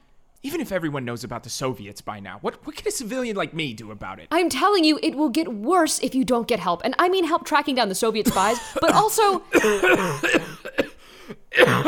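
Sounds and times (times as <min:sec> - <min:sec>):
speech: 0:00.4 - 0:11.8
harsh rasping coughing: 0:08.2 - 0:11.8
strained breathy gasps: 0:11.0 - 0:11.4.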